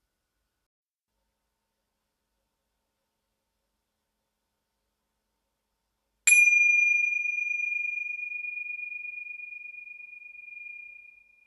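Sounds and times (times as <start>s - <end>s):
bell struck to mark the start of prayer: 6.3s - 11.4s.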